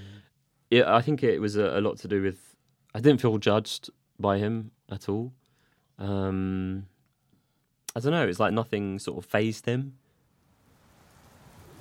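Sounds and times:
speech: 0.7 - 5.4, 6.0 - 6.9, 7.9 - 10.0
heavy rain falling: 10.7 - 11.7.

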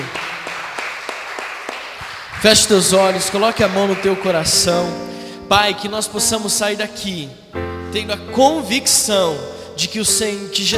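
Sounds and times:
congregation applauding: 0.0 - 5.1
speech: 2.4 - 10.7.

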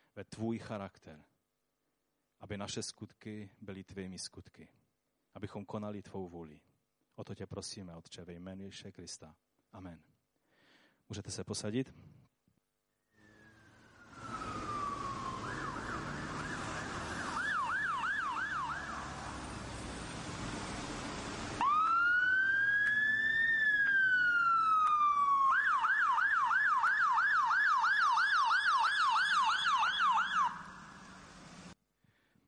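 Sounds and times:
speech: 0.2 - 1.3, 2.4 - 10.1, 11.1 - 12.3
low traffic rumble: 13.2 - 27.3, 28.1 - 31.8
ambulance siren wailing and yelping in London: 13.2 - 31.8.

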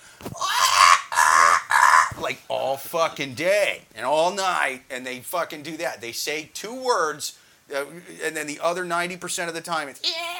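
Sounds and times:
person imitating a parrot's screech with harsh raspy squawks: 0.4 - 2.2, 10.0 - 10.3
speech: 2.3 - 10.3.

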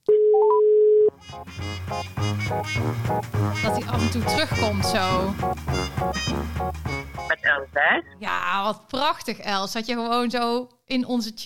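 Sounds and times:
telephone dial tone while placing a call: 0.1 - 1.1
music: 1.1 - 8.2
speech: 1.5 - 11.4.

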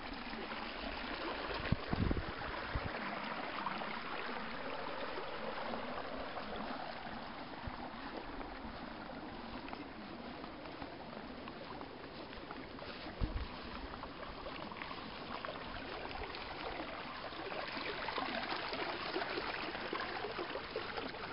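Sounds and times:
water trickling and flowing through rice paddies: 0.0 - 21.3
footsteps walking through rice paddies: 6.3 - 16.8.

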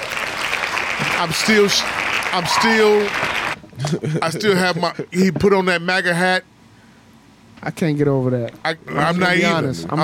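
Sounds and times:
group of people hand clapping: 0.0 - 3.6
speech: 1.2 - 6.5, 7.6 - 10.0
people shouting and whooping: 2.3 - 3.6.

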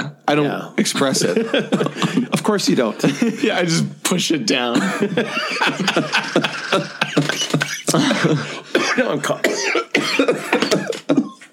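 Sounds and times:
speech: 0.3 - 6.9, 7.9 - 10.1
laughter: 0.9 - 4.0, 4.6 - 9.4, 10.3 - 11.5
harsh raspy coughing: 4.7 - 11.5.

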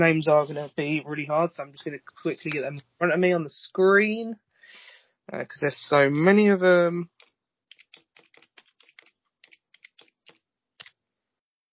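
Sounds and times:
speech: 0.0 - 7.2
rapid typing on a computer keyboard: 7.2 - 11.0.

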